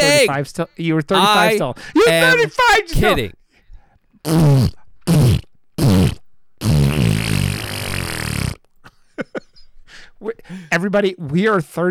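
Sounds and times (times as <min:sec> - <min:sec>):
speech: 0:00.2 - 0:03.4, 0:04.2 - 0:04.8, 0:10.2 - 0:11.8
farting into a microphone: 0:04.3 - 0:08.7.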